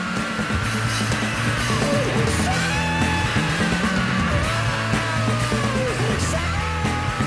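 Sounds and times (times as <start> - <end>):
distorted rock guitars: 0.0 - 7.2
rock drums pounding: 0.0 - 7.2
raw strained male scream in a rock song: 1.6 - 7.2.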